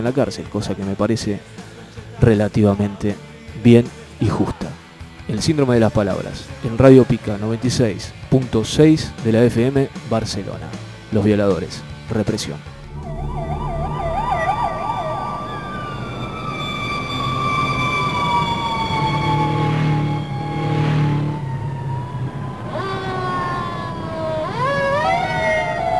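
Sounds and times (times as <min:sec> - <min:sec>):
speech: 0:00.0 - 0:01.6, 0:02.2 - 0:12.8
emergency vehicle sirens: 0:12.8 - 0:25.9.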